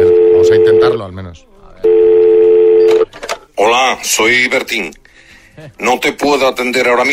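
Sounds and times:
steady loud electronic phone line tone as a call is placed: 0.0s - 1.0s, 1.8s - 3.1s
speech: 1.0s - 1.6s, 3.6s - 5.0s, 5.6s - 7.1s.

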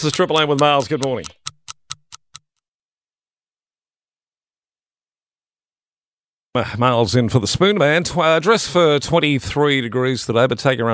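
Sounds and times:
speech: 0.0s - 1.4s, 6.6s - 10.9s
clock ticking: 0.0s - 2.5s.

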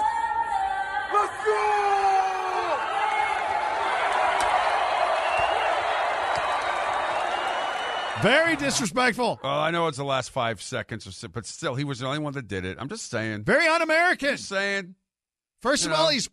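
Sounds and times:
packed arena crowd cheering during national anthem: 0.0s - 9.6s
speech: 8.2s - 15.0s, 15.6s - 16.3s.

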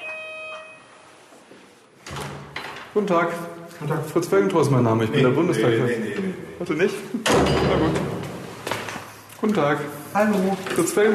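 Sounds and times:
short electronic doorbell chime in a residential area: 0.0s - 1.1s
speech: 2.9s - 8.1s, 9.4s - 11.1s.

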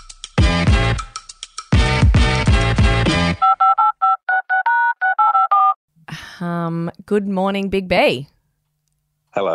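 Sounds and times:
lively music: 0.0s - 3.4s
touch-tone telephone dialing beeps: 3.4s - 5.8s
speech: 6.7s - 8.3s.

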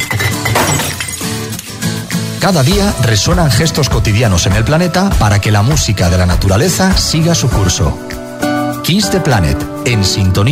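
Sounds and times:
glass bottles clattering and shattering into a recycling bin: 0.0s - 2.1s
speech: 2.4s - 8.2s, 8.8s - 10.5s.

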